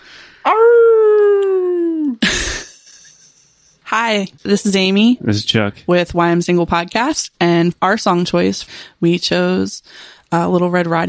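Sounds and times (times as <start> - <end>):
person howling like a wolf: 0.5 - 2.1
speech: 4.1 - 11.0.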